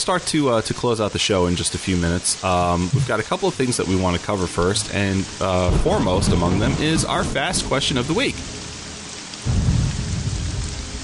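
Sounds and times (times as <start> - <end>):
speech: 0.0 - 8.6
steady rain: 0.0 - 11.0
deep loud rumble of thunder: 2.8 - 3.4, 4.6 - 11.0.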